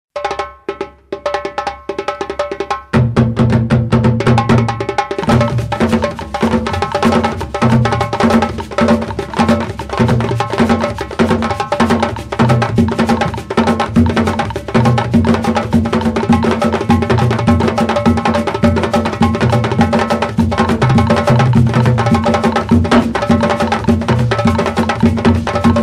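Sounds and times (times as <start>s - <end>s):
dundun drum in traditional Senegal style: 0.2s - 25.8s
shekere rattling in traditional Senegal style: 5.2s - 25.8s.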